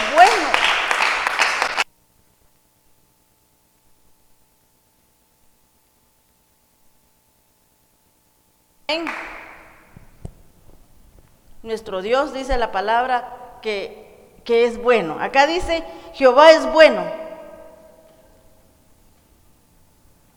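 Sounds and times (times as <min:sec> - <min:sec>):
audience clapping: 0:00.0 - 0:01.9, 0:09.0 - 0:10.0
faint hum: 0:00.0 - 0:20.3
speech: 0:08.9 - 0:09.2, 0:11.7 - 0:17.2.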